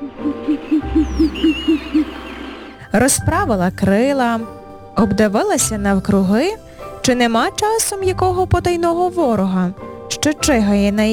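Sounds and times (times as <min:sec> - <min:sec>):
owl hooting: 0:00.0 - 0:02.9
thin high bird whistles: 0:00.0 - 0:02.9
speech: 0:03.0 - 0:11.1.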